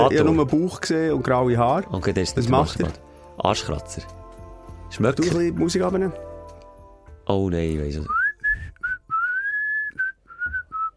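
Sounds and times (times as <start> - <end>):
speech: 0.0 - 4.2, 4.9 - 6.3, 7.3 - 8.2
person whistling a short tune: 8.0 - 10.9.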